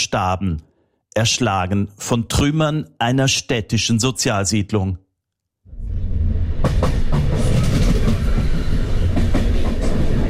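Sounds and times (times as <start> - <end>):
speech: 0.0 - 5.0
regional express train rolling across the Po plain, heard from inside a carriage: 5.7 - 10.2
clickety-clack train wheel beats: 6.6 - 10.2.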